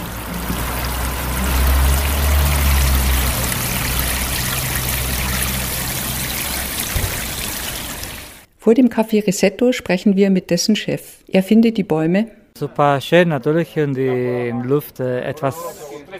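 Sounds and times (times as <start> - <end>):
water from hoses and watering cans splashing onto street trees: 0.0 - 8.5
speech: 8.7 - 16.1.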